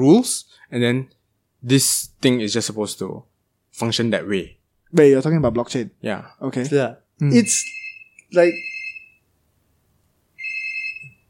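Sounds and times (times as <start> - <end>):
speech: 0.0 - 8.7
electronic telephone ring: 7.5 - 9.2, 10.4 - 11.2.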